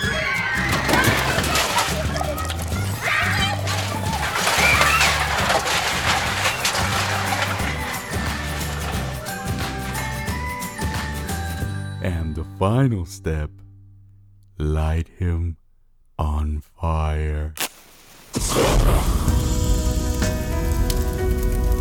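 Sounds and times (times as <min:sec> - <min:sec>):
music: 0:00.0 - 0:14.4, 0:18.4 - 0:21.7
gasoline glugging and sloshing as it is poured: 0:00.5 - 0:11.6
speech: 0:12.6 - 0:13.6, 0:14.6 - 0:15.6, 0:16.2 - 0:17.6, 0:18.3 - 0:19.4.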